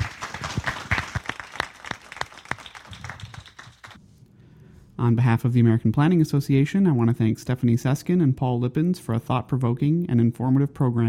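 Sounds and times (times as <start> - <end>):
audience applause: 0.0 - 4.0
speech: 5.0 - 11.0.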